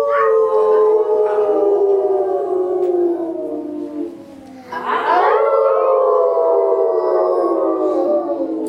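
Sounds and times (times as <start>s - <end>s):
chorus of wolves howling: 0.0s - 4.2s, 4.8s - 8.6s.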